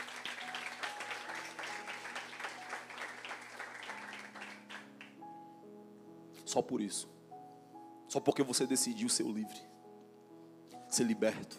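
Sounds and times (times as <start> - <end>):
crowd applauding: 0.0 - 5.2
speech: 6.5 - 7.2, 8.1 - 9.8, 11.0 - 11.5.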